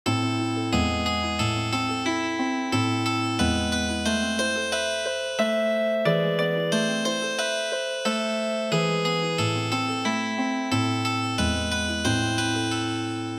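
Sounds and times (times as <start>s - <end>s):
healing harp trio music: 0.2s - 13.3s.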